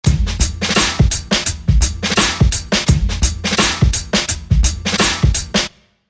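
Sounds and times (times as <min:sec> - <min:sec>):
spacey drone drum: 0:00.0 - 0:05.6.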